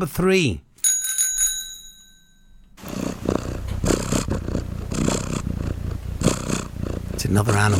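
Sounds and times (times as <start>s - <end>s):
speech: 0.0s - 0.7s, 7.3s - 7.7s
bell ringing: 0.8s - 2.8s
cat purring: 2.8s - 7.7s.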